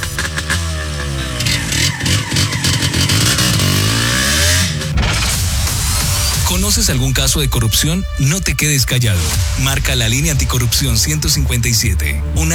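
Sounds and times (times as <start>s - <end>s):
motorcycle engine revving over a rumbling idle: 0.0s - 12.5s
speech: 6.8s - 12.5s.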